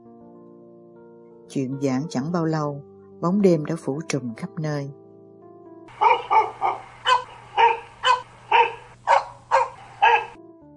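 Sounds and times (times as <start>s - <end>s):
speech: 1.5s - 5.0s
dog barking at night: 5.9s - 10.4s.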